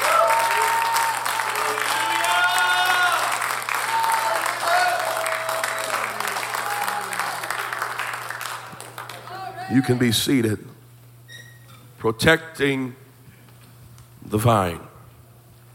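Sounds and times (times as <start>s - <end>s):
large crowd clapping in praise of God: 0.0s - 10.0s
speech: 9.7s - 10.7s, 12.0s - 13.0s, 14.3s - 14.9s.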